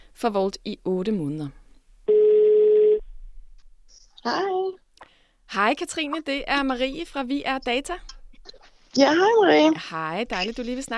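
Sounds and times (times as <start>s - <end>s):
speech: 0.2s - 1.6s, 4.2s - 4.8s, 5.5s - 10.9s
telephone ringing tone electronic beep: 2.1s - 3.0s.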